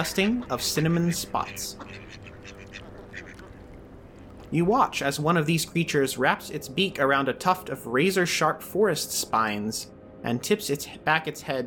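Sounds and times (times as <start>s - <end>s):
speech: 0.0s - 2.2s, 4.5s - 11.6s
flock of ducks quacking: 0.0s - 4.7s
low hum: 0.0s - 11.6s.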